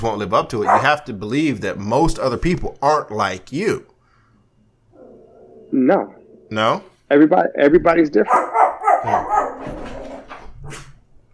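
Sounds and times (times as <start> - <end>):
speech: 0.0 - 3.9, 5.7 - 10.0
small dog barking at a neighbor walking by: 0.6 - 1.0, 8.3 - 9.7.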